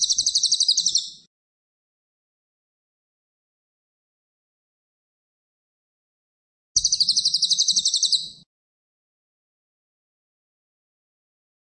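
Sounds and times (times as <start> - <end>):
cililin singing rapid buzzy trilled notes: 0.0 - 1.3, 6.8 - 8.5.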